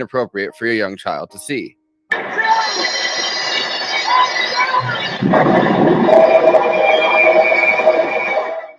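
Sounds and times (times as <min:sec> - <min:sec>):
speech: 0:00.0 - 0:02.4, 0:04.8 - 0:06.8
heavy train crash: 0:02.1 - 0:08.7
train rumbling and screeching: 0:02.1 - 0:08.7
high metallic squeals: 0:02.2 - 0:08.7
sustained roaring grinding noise: 0:03.3 - 0:08.7.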